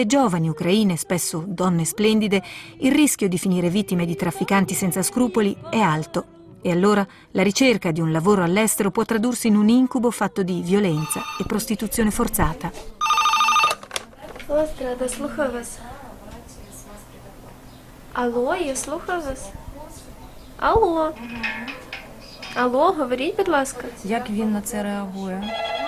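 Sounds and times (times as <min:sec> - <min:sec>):
speech: 0:00.0 - 0:13.0, 0:14.5 - 0:16.0, 0:18.2 - 0:19.6, 0:20.6 - 0:21.8, 0:22.6 - 0:25.8
warbling electronic telephones ringing at a busy switchboard: 0:11.0 - 0:11.7, 0:13.0 - 0:13.8.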